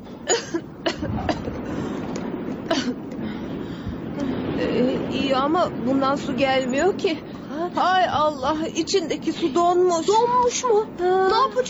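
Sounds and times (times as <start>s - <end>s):
moving train rumbling and rattling: 0.0s - 11.6s
woman coughing: 0.2s - 1.6s, 2.7s - 3.0s
speech: 5.4s - 11.6s.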